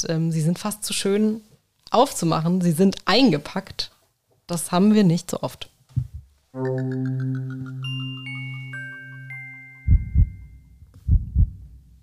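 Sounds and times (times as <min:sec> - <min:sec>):
speech: 0:00.0 - 0:08.9
loud heartbeat sound effect with deep lub-dub double thumps: 0:06.0 - 0:06.3, 0:09.9 - 0:10.4, 0:11.0 - 0:11.7
sustained tense synth chord with chiming tones: 0:06.6 - 0:10.0.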